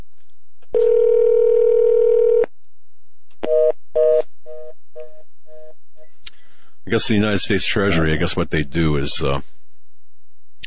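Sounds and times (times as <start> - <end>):
steady telephone dial tone: 0.8 - 2.5
speech: 6.9 - 9.6.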